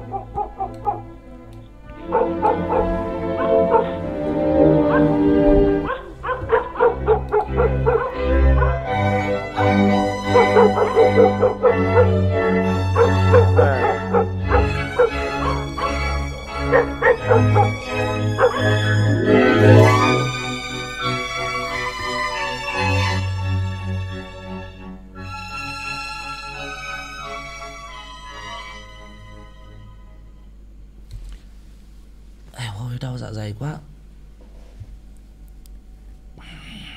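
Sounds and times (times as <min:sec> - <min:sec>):
village dogs barking, yipping and whimpering: 0:00.0 - 0:01.2, 0:01.9 - 0:23.2.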